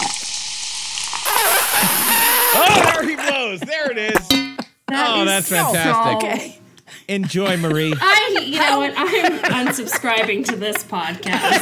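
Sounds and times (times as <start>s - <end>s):
vinegar fizzing on baking soda: 0.0s - 2.9s
laughter: 2.1s - 4.4s, 5.0s - 11.6s
speech: 3.5s - 11.6s.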